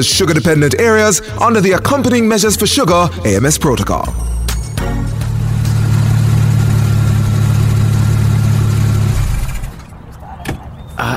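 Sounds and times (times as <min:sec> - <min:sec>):
speech: 0:00.0 - 0:04.4
car engine running while driving: 0:04.5 - 0:10.0.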